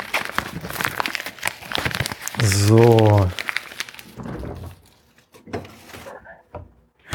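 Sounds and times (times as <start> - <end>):
chocolate bar paper wrapper crinkling as it is folded shut: 0.0 - 5.3
speech: 2.4 - 3.4
refrigerator door opening and closing with soft thuds: 4.1 - 5.8.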